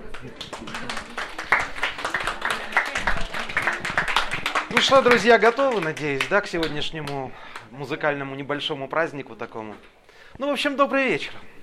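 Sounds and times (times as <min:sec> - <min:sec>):
audience applause: 0:00.0 - 0:07.7
speech: 0:04.8 - 0:11.5.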